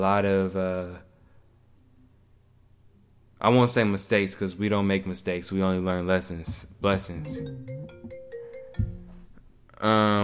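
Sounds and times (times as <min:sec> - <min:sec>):
speech: 0:00.0 - 0:01.1, 0:03.4 - 0:08.2, 0:09.8 - 0:10.2
phone ringtone playing a short electronic melody: 0:07.2 - 0:09.4.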